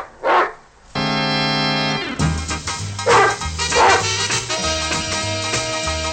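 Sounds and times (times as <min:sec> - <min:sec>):
dog barking: 0:00.0 - 0:00.6, 0:03.0 - 0:04.1
music with steady chords and a rhythmic beat: 0:01.2 - 0:06.1.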